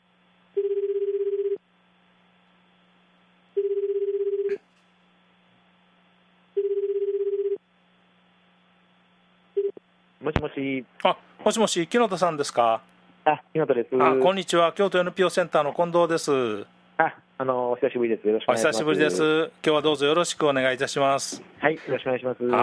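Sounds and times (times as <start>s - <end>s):
telephone ringback tone: 0.6s - 1.6s, 3.6s - 4.5s, 6.6s - 7.6s
speech: 10.3s - 22.6s.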